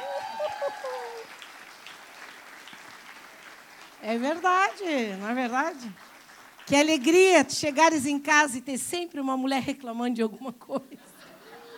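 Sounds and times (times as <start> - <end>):
audience applause: 0.0 - 7.3
speech: 4.0 - 6.1, 6.7 - 11.1
laughter: 10.9 - 11.7.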